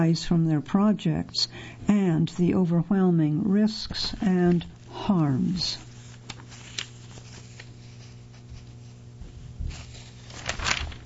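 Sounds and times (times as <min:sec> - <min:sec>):
person reading a printed publication aloud: 0:00.0 - 0:05.9
speech: 0:00.0 - 0:05.9
page of a printed publication being turned: 0:03.8 - 0:05.0, 0:05.7 - 0:11.0.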